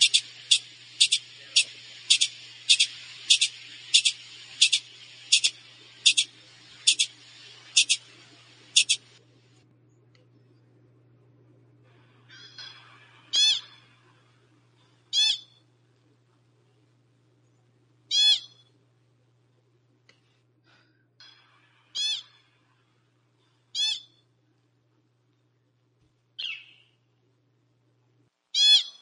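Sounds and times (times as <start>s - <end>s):
small mammal high-pitched chirps and shrieks: 0.0s - 7.2s, 7.8s - 8.0s, 8.7s - 9.0s, 12.3s - 13.8s, 15.1s - 15.6s, 18.1s - 18.7s, 21.9s - 22.5s, 23.7s - 24.2s, 26.4s - 26.9s, 28.6s - 28.9s
faint low hum: 0.0s - 28.9s.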